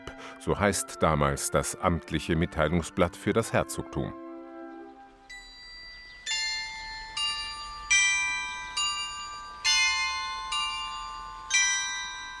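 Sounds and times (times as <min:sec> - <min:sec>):
speech: 0:00.4 - 0:04.2
town hall carillon of tuned bells playing a slow melody: 0:05.3 - 0:12.3.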